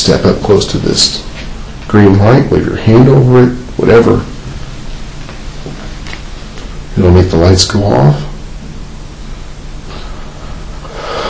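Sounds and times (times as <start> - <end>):
speech: 0.0 - 1.3, 1.9 - 4.3, 7.0 - 8.3
close airy breathing into the microphone: 9.9 - 11.2.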